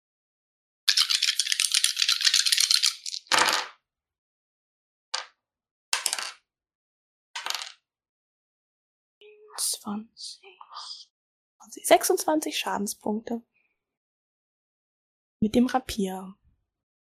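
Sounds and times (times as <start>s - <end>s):
dice shaken in a cup during a tabletop role-playing game: 0.9s - 3.7s
dice thrown down clattering and bouncing: 0.9s - 3.8s, 6.0s - 6.4s, 7.4s - 7.8s
speech: 9.5s - 13.5s, 15.4s - 16.4s.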